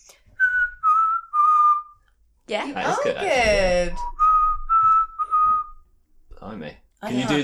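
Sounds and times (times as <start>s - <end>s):
person whistling a short tune: 0.4s - 2.0s, 3.9s - 5.9s
speech: 2.5s - 4.1s, 6.4s - 7.4s.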